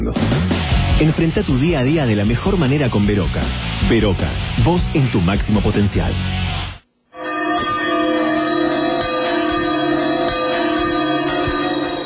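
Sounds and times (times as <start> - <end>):
speech: 1.0 - 6.6
two bells ringing: 7.2 - 12.0.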